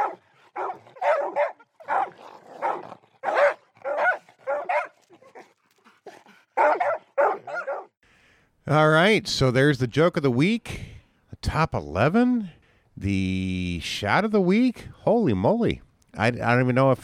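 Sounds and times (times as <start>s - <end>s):
dog barking with sharp barks and yips: 0.0s - 8.0s
speech: 8.7s - 10.9s, 11.5s - 17.0s.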